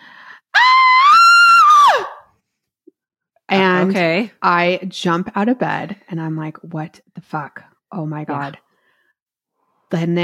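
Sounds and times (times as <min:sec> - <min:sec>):
voice imitating a woman's high-pitched scream: 0:00.6 - 0:02.2
speech: 0:03.8 - 0:08.6, 0:09.9 - 0:10.2.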